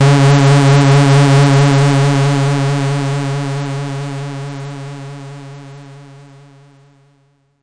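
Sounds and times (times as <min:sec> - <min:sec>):
bass note in C sharp 3: 0:00.0 - 0:05.4.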